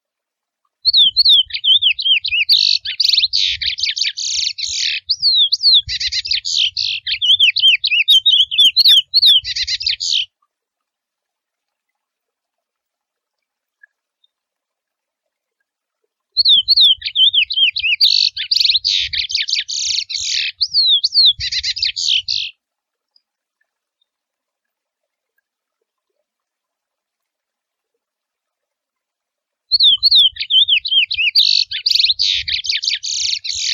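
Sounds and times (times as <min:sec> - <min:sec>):
wild curió seedeater singing: 0:00.9 - 0:10.3, 0:16.4 - 0:22.5, 0:29.7 - 0:33.7.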